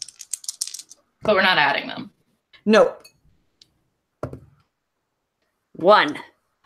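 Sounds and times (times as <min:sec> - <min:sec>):
three six-sided dice being rolled: 0:00.0 - 0:01.4
speech: 0:01.2 - 0:03.1, 0:05.8 - 0:06.3.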